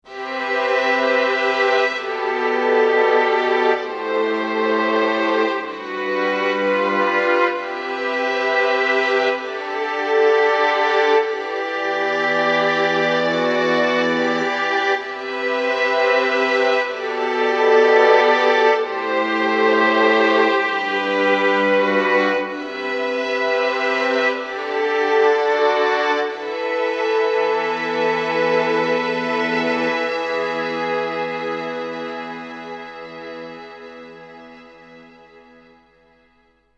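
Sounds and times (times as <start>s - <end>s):
strings on tape: 0.0s - 36.7s.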